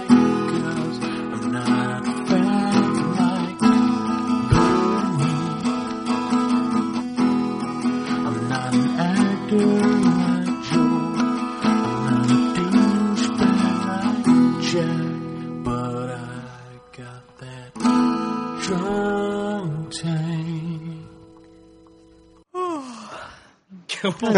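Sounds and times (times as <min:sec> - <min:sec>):
calm steady instrumental music: 0:00.0 - 0:22.5
big drawn-out yawn: 0:22.5 - 0:23.5
speech: 0:24.2 - 0:24.3.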